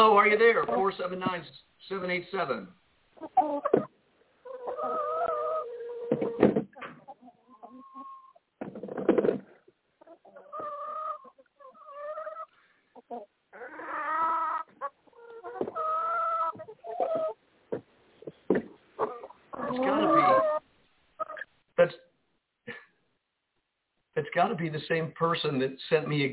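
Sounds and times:
speech: 0:00.0 - 0:03.9, 0:24.6 - 0:26.3
chicken clucking over a caller's phone line: 0:03.2 - 0:17.4, 0:18.2 - 0:21.5.

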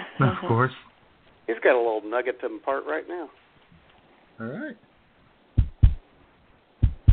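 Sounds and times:
speech: 0:00.2 - 0:00.9, 0:01.5 - 0:03.4, 0:04.4 - 0:04.9
heartbeat thumping: 0:05.5 - 0:06.1, 0:06.8 - 0:07.1.

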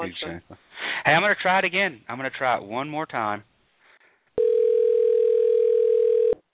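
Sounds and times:
speech: 0:00.0 - 0:03.5
phone line ringing on a call: 0:04.4 - 0:06.4.

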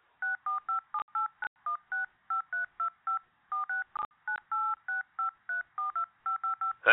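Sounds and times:
telephone keypad DTMF beeps as numbers are entered: 0:00.2 - 0:06.8.

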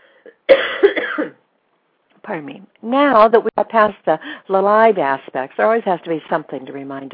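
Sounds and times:
speech: 0:00.2 - 0:00.9, 0:02.3 - 0:07.1
person coughing: 0:00.2 - 0:01.4.

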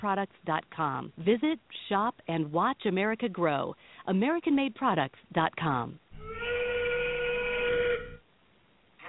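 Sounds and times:
speech: 0:00.0 - 0:06.0
factory steam whistle blowing: 0:06.2 - 0:08.2.

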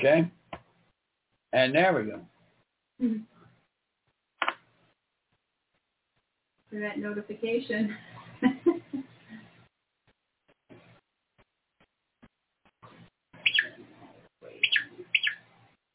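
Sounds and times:
speech: 0:00.0 - 0:00.4, 0:01.5 - 0:02.3, 0:03.0 - 0:03.3, 0:06.7 - 0:09.1
small birds chirping, possibly sparrows or robins: 0:13.4 - 0:15.6.

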